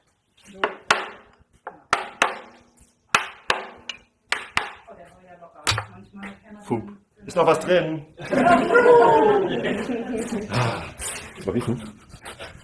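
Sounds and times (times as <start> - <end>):
hammer knocking on the side of a wooden whisky cask to loosen the bung: 0.6 - 1.3, 1.9 - 2.6, 3.2 - 4.8, 5.7 - 6.0
speech: 6.7 - 11.9
laughter: 8.2 - 12.0.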